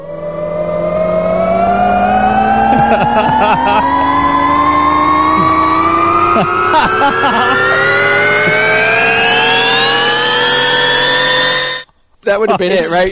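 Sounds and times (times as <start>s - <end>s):
science-fiction sound effect of layered siren-like tones gliding upward: 0.0s - 11.9s
laughter: 2.6s - 10.0s, 12.3s - 13.1s
speech: 3.2s - 4.0s, 6.4s - 7.8s, 12.3s - 13.1s.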